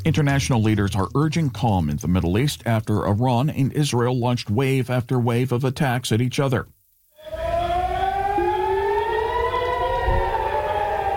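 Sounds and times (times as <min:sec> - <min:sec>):
speech: 0:00.0 - 0:07.4
air raid sirens wailing: 0:07.2 - 0:11.1.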